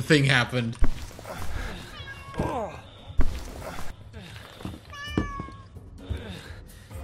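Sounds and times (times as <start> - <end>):
speech: 0.0 - 0.9
cat meowing: 1.8 - 2.6, 4.9 - 5.7.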